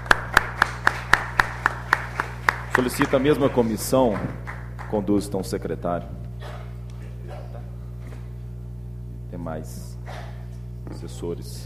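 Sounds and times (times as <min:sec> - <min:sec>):
hand claps during a municipal council session: 0:00.0 - 0:05.1
low constant hum: 0:00.0 - 0:11.6
speech: 0:02.8 - 0:06.2, 0:09.5 - 0:09.9, 0:11.0 - 0:11.6.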